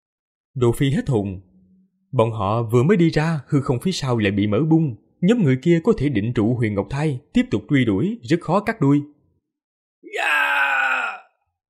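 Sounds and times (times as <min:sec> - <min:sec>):
speech: 0:00.6 - 0:01.5, 0:02.1 - 0:09.2
agonized groaning cry of people caught in a deadly fantasy battle: 0:10.0 - 0:11.4.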